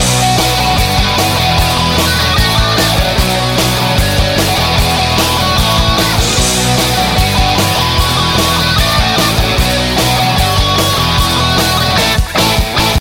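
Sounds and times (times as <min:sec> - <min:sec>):
grunge guitar: 0:00.0 - 0:12.9.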